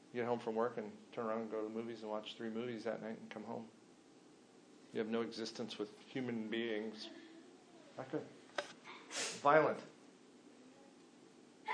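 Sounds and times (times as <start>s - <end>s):
faint hush: 0.0s - 11.7s
speech: 0.1s - 3.8s, 4.9s - 7.2s, 8.0s - 8.4s, 9.4s - 9.9s
sneeze: 8.9s - 9.5s.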